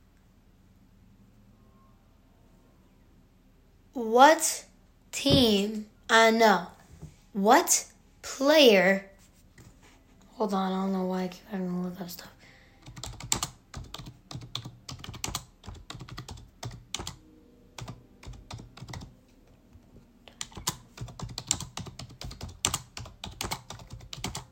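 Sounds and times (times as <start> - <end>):
speech: 4.0 - 6.8, 7.4 - 9.1, 10.4 - 12.3
keyboard typing: 12.8 - 17.2, 17.8 - 19.2, 20.3 - 24.4.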